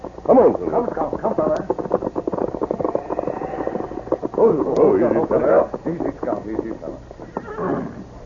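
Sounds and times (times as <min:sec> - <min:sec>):
horse hooves clip-clopping: 0:00.0 - 0:08.2
low voices murmuring: 0:00.2 - 0:08.2
speech: 0:00.3 - 0:01.8, 0:04.4 - 0:07.9
horse whinnying: 0:02.6 - 0:04.4, 0:07.2 - 0:08.1.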